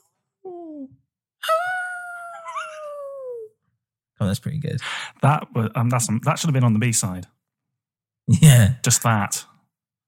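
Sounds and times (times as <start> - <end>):
person imitating a howl: 0.5 - 3.5
speech: 4.2 - 7.4, 8.3 - 9.5.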